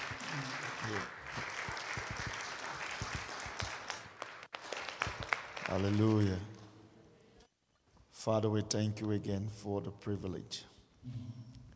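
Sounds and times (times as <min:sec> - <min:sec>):
congregation clapping hands in applause: 0:00.0 - 0:06.6
speech: 0:00.9 - 0:01.2, 0:05.7 - 0:06.5, 0:08.2 - 0:11.4.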